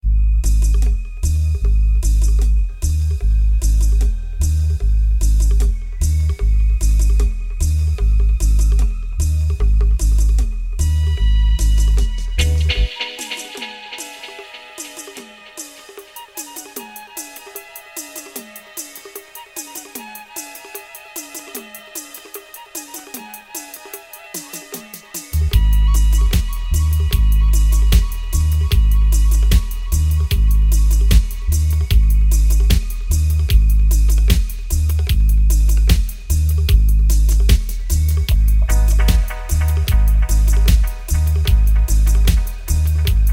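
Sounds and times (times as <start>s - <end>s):
dub flute music: 0.0s - 43.3s.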